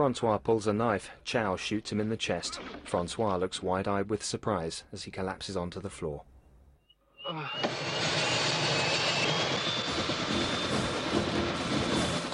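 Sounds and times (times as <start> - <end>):
speech: 0.0 - 6.3, 7.2 - 8.2
helicopter engine and rotor noise: 7.5 - 12.3.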